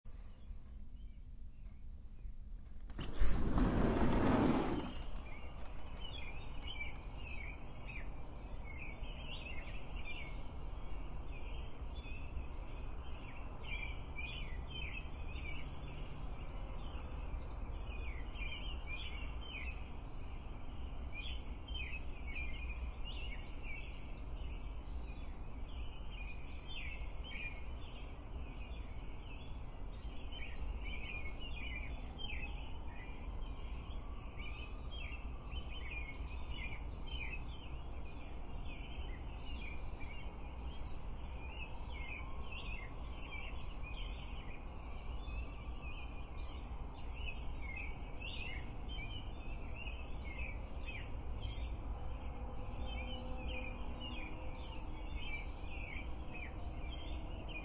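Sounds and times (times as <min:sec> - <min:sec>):
morning birds singing: 0:00.1 - 0:57.6
door opening: 0:02.9 - 0:06.0.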